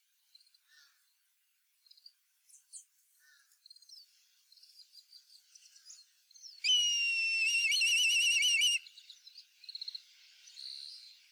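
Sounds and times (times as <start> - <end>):
black kite giving a shrill quavering whistled whinny: 6.6 - 8.8
faint high chirps: 6.6 - 8.8.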